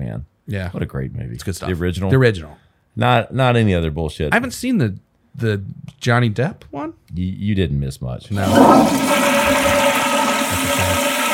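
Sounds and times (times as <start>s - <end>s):
speech: 0.2s - 9.6s
toilet flushing: 8.3s - 11.3s
toilet drain gurgling: 8.4s - 11.3s.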